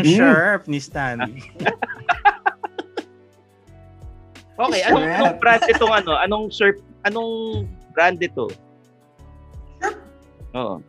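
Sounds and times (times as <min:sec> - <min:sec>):
laughter: 0:00.0 - 0:00.4, 0:01.3 - 0:03.1, 0:04.7 - 0:06.4
speech: 0:00.0 - 0:02.2, 0:04.6 - 0:08.6, 0:09.8 - 0:10.8
soft low thumps: 0:07.5 - 0:07.9
dog barking: 0:09.8 - 0:10.1.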